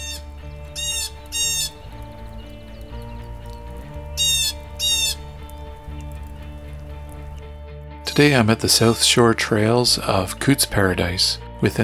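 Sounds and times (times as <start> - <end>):
blue jay squawks: 0.0 - 5.7
humming musical background: 0.0 - 11.8
speech: 8.2 - 11.8.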